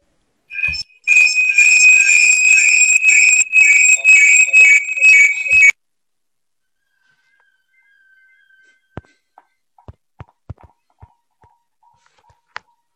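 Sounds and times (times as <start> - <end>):
alarm clock ringing with shrill electronic tone: 1.1 - 5.7.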